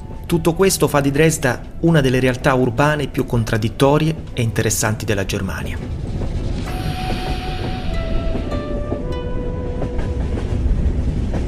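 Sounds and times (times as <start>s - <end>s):
passenger train rolling along the rails: 0.0s - 11.4s
speech: 0.3s - 6.0s.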